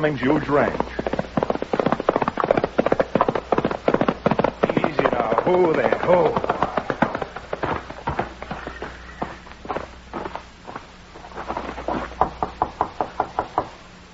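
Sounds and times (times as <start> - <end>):
speech: 0.0 - 1.3, 5.5 - 6.6
horse hooves galloping on a trail: 0.0 - 13.9.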